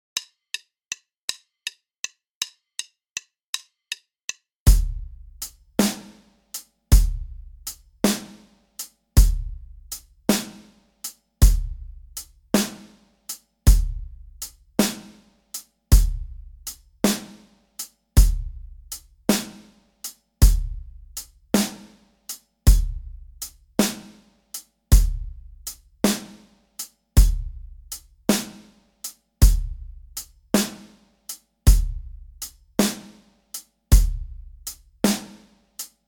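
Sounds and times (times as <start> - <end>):
drum kit playing shifted triplets exercise: 4.7 - 15.2, 15.9 - 17.6, 18.2 - 22.0, 22.7 - 24.2, 24.9 - 26.6, 27.2 - 33.3, 33.9 - 35.5.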